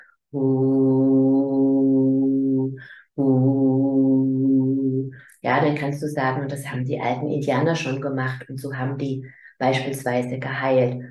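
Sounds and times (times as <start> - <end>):
speech: 0.3 - 0.6, 3.2 - 3.4, 5.6 - 11.0
person humming a low steady vocal tone: 0.3 - 5.2
person breathing: 2.8 - 3.2, 9.2 - 9.6.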